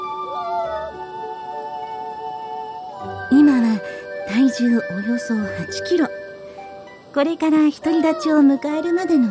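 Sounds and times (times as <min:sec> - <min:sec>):
harp seal pup crying after its mother went into the sea: 0:00.2 - 0:02.2
speech: 0:04.6 - 0:06.2, 0:07.2 - 0:09.2.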